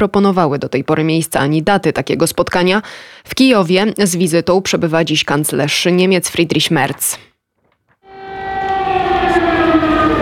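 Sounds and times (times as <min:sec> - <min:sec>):
speech: 0:00.0 - 0:07.3
air raid siren wailing in Kyiv Ukraine: 0:08.0 - 0:10.2.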